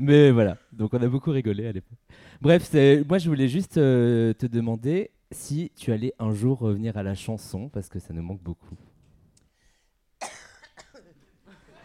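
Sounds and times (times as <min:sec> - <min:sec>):
speech: 0:00.0 - 0:08.9
person coughing with hacking coughs: 0:10.2 - 0:11.3
laughter: 0:11.2 - 0:11.8.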